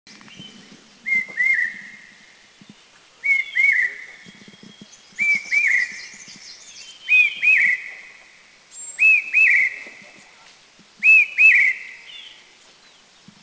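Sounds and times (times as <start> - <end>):
Large Hawk Cuckoo calling in Dirang, India: 1.0 - 10.2, 11.0 - 12.5.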